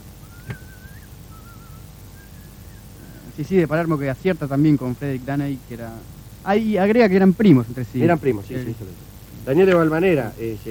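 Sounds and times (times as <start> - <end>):
low hum: 0.0 - 10.7
person whistling a slow melody: 0.3 - 2.8
speech: 3.4 - 10.7.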